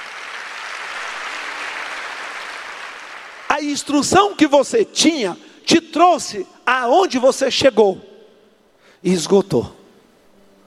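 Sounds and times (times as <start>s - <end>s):
audience applause: 0.0s - 4.0s
speech: 3.6s - 8.1s, 9.0s - 9.8s.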